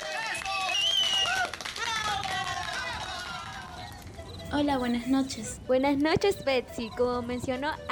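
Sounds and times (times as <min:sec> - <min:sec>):
group applauding for a contest winner: 0:00.0 - 0:04.2
speech: 0:04.5 - 0:07.8.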